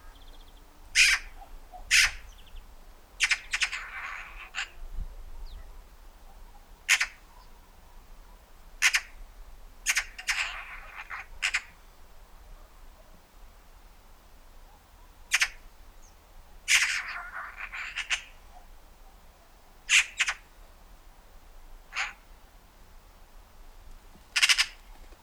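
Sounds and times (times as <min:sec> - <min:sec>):
Eurasian magpie Pica pica harsh rasping chatter: 0:01.0 - 0:02.4, 0:03.2 - 0:04.8, 0:06.9 - 0:07.2, 0:08.8 - 0:09.2, 0:09.8 - 0:11.8, 0:15.3 - 0:15.6, 0:16.7 - 0:18.5, 0:19.9 - 0:20.4, 0:21.9 - 0:22.2, 0:24.3 - 0:25.2.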